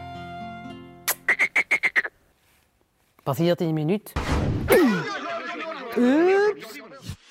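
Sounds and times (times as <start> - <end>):
cartoon-like frog croaking sound effect: 1.3 - 2.2
speech: 3.3 - 5.0, 6.0 - 6.8
laughter: 4.7 - 7.0.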